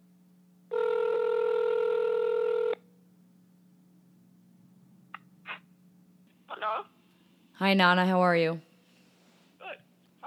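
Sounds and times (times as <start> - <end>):
faint constant low hum: 0.0 - 10.2
home phone dial tone: 0.7 - 2.8
speech: 7.6 - 8.7.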